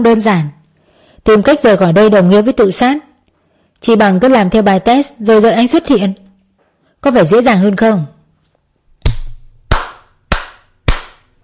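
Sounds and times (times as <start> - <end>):
speech: 0.0 - 0.6, 1.2 - 3.1, 3.8 - 6.2, 7.0 - 8.1
sharp hand claps: 9.0 - 11.4.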